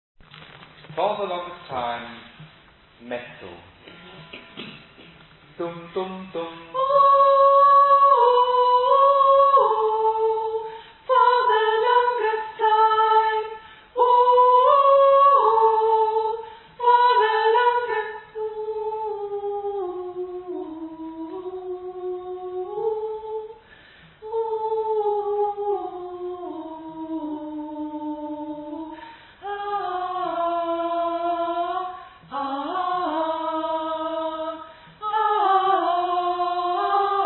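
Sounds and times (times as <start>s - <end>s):
mezzo-soprano singing: 5.9s - 23.6s, 24.2s - 37.2s.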